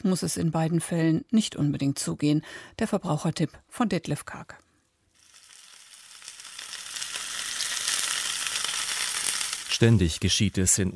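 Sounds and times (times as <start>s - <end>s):
speech: 0.0s - 4.6s, 9.8s - 10.9s
food sizzling while frying in a pan: 5.1s - 10.7s.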